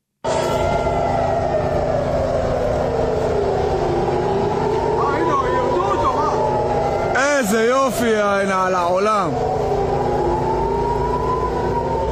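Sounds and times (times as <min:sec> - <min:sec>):
air raid sirens wailing in Israel over an intercepted missile from Yemen: 0:00.2 - 0:12.1.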